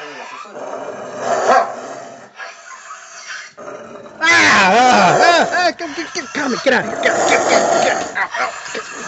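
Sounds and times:
person mimicking a snarling barking dog: 4.2s - 9.0s
speech: 5.4s - 9.0s.

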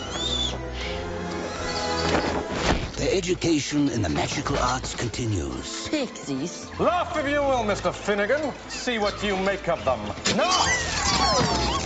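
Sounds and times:
bird calling: 0.0s - 2.4s, 7.6s - 11.8s
speech: 3.2s - 11.8s.

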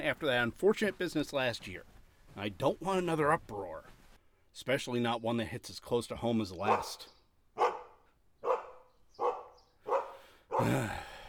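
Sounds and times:
speech: 0.0s - 3.9s, 4.5s - 7.2s, 10.6s - 11.1s
dog barking: 6.6s - 10.7s.

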